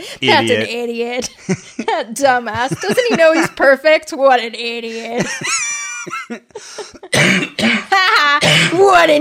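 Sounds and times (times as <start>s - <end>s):
speech: 0.1s - 9.1s
laughter: 1.4s - 3.7s, 4.9s - 7.2s
harsh coughing fit brought on by laughing: 7.0s - 8.9s
raspy throat-clearing bursts: 7.1s - 8.8s.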